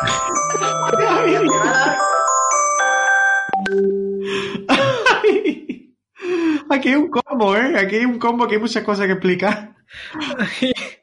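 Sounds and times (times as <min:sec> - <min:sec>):
laughter: 0:00.0 - 0:02.3, 0:04.5 - 0:05.8
electronic alarm ringing: 0:00.0 - 0:04.3
speech: 0:06.8 - 0:10.8.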